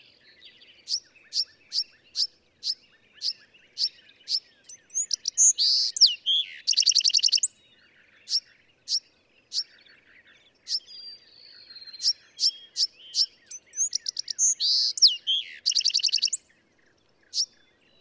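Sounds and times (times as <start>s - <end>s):
Bewick's wren singing: 0.7s - 7.6s, 8.2s - 17.9s.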